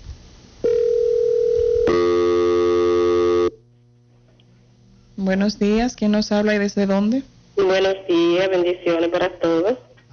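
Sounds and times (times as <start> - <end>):
telephone line tones of an incoming call on a phone-in line: 0.6 - 3.6
speech: 5.3 - 9.8.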